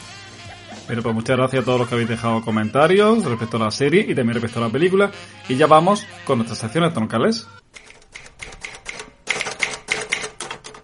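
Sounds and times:
speech: 0:00.9 - 0:07.8
typewriter keys clacking: 0:07.8 - 0:10.8.

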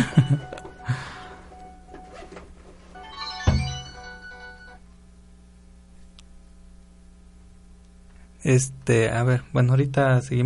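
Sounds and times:
phone ringtone of an incoming call: 0:00.0 - 0:02.2, 0:03.0 - 0:04.8
low hum: 0:00.0 - 0:10.4
speech: 0:08.4 - 0:10.4.

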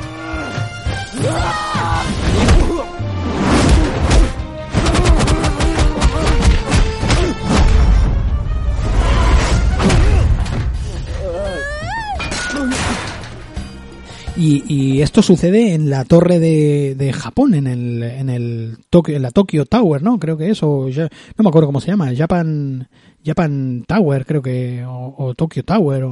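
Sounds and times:
busy musical backdrop: 0:00.0 - 0:15.5
shouting voices: 0:01.1 - 0:02.2
speech: 0:14.4 - 0:26.1.

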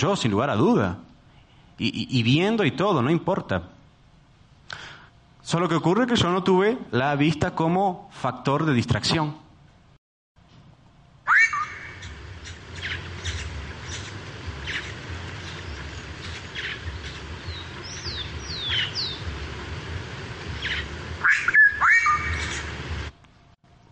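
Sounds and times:
speech: 0:00.0 - 0:01.1, 0:01.8 - 0:03.8, 0:05.5 - 0:09.4
oropendola calls: 0:11.3 - 0:23.2
steady rushing ambient background: 0:11.4 - 0:23.5.

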